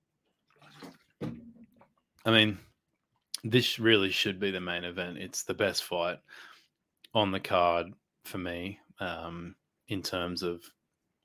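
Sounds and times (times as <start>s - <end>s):
water sloshing in a glass: 0.4s - 2.0s
speech: 2.2s - 2.7s, 3.4s - 6.5s, 7.1s - 10.8s.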